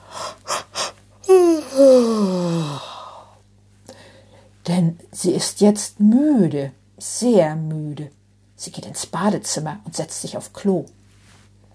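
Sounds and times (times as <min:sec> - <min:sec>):
person acting out a big drawn-out yawn: 0:00.1 - 0:03.3
speech: 0:05.2 - 0:11.0.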